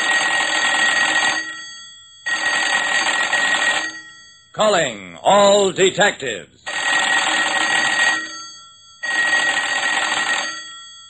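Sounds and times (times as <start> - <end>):
telephone bell ringing: 0.0 - 4.5, 6.7 - 11.0
speech: 4.6 - 6.5.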